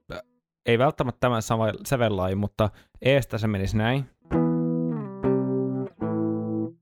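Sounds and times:
speech: 0:00.1 - 0:04.4
slightly out-of-tune guitar strumming a chord progression: 0:04.3 - 0:06.8.

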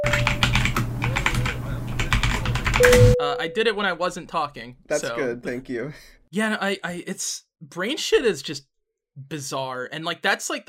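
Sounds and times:
loud typing on a computer keyboard: 0:00.0 - 0:03.1
speech: 0:02.8 - 0:10.6.

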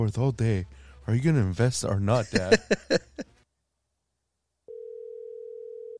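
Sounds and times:
speech: 0:00.0 - 0:03.1
laughter: 0:02.2 - 0:03.2
outgoing phone call ringing tone: 0:04.7 - 0:05.9.

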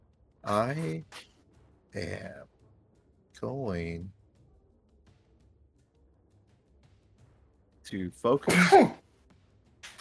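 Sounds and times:
speech: 0:00.5 - 0:01.3, 0:01.9 - 0:02.5, 0:03.4 - 0:04.2, 0:07.9 - 0:09.0
person sneezing loudly: 0:08.5 - 0:09.0.

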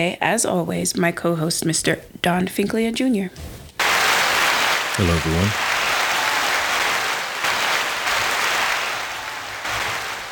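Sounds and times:
speech: 0:00.0 - 0:03.6, 0:05.0 - 0:05.7
crowd applause: 0:03.8 - 0:10.2.

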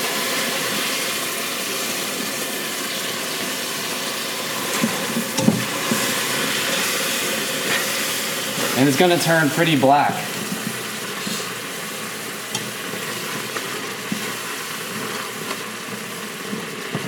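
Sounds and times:
water hissing into hot caramelized sugar: 0:00.0 - 0:17.0
speech: 0:08.8 - 0:10.3.

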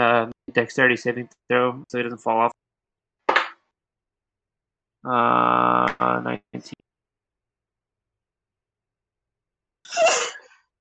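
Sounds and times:
speech: 0:00.0 - 0:02.6, 0:05.0 - 0:06.8
brief faint vocal sound: 0:05.1 - 0:06.7
person sneezing: 0:09.9 - 0:10.5.

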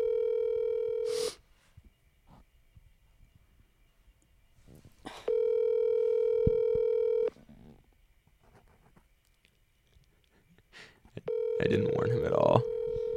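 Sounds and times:
outgoing phone call ringback tones: 0:00.0 - 0:01.4, 0:05.3 - 0:07.3, 0:11.3 - 0:13.1
speech: 0:11.6 - 0:12.7.

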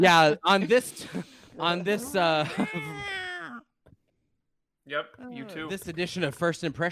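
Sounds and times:
speech: 0:00.0 - 0:03.3, 0:04.9 - 0:06.9
laughter: 0:00.5 - 0:03.5
voice imitating a screeching cat: 0:01.9 - 0:03.6.

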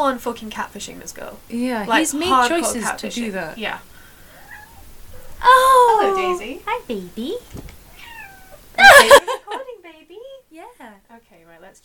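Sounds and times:
speech: 0:00.0 - 0:03.9, 0:05.4 - 0:07.7, 0:10.0 - 0:11.8
cat meowing: 0:04.3 - 0:04.9, 0:07.8 - 0:08.8
laughter: 0:08.8 - 0:09.6.

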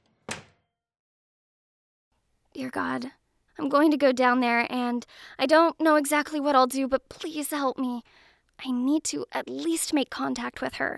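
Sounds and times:
door slowly closing with a dull thunk: 0:00.0 - 0:00.6
speech: 0:02.6 - 0:10.9.

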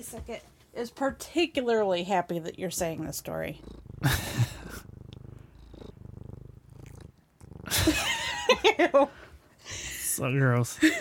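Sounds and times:
speech: 0:00.0 - 0:04.4, 0:08.7 - 0:09.2, 0:10.2 - 0:10.9
cat purring: 0:02.3 - 0:08.8
burst of laughter: 0:04.0 - 0:04.8, 0:07.7 - 0:09.2, 0:10.8 - 0:10.9.

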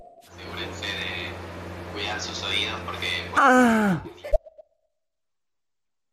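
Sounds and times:
speech: 0:02.2 - 0:04.2
relaxed drawn-out vocal cry like a sigh: 0:03.4 - 0:04.1.

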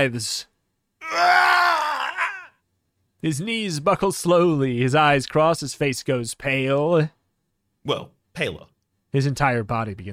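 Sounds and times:
speech: 0:00.0 - 0:00.5, 0:03.2 - 0:07.2, 0:07.8 - 0:10.1
human voice imitating a vampire's scream: 0:01.0 - 0:02.6.

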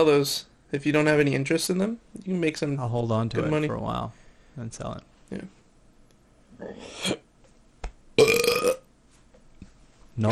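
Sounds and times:
speech: 0:00.0 - 0:05.6, 0:06.6 - 0:07.2
person burping: 0:06.6 - 0:07.3, 0:08.2 - 0:08.9.

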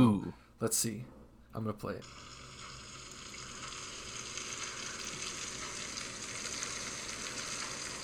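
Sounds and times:
speech: 0:00.0 - 0:02.4
food frying in a pan: 0:02.0 - 0:08.0.

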